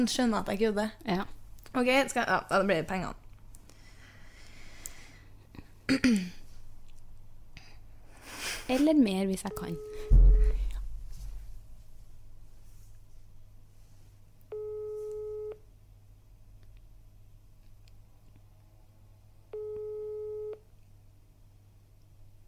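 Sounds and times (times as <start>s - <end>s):
speech: 0.0s - 3.2s, 5.9s - 6.4s, 8.7s - 10.2s
phone ringback tone going unanswered: 9.5s - 10.6s, 14.5s - 15.6s, 19.6s - 20.6s
brief thump: 10.1s - 11.4s.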